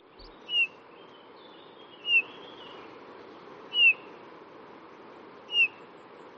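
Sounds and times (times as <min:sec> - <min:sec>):
steady hiss: 0:00.0 - 0:06.3
Eurasian bullfinch song of soft piping whistles: 0:00.5 - 0:00.8, 0:02.0 - 0:02.8, 0:03.7 - 0:04.1, 0:05.5 - 0:05.8.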